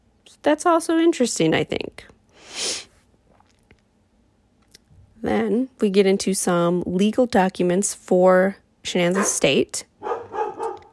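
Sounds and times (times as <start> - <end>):
speech: 0.4 - 2.9, 5.2 - 9.9
dog barking: 9.2 - 10.9.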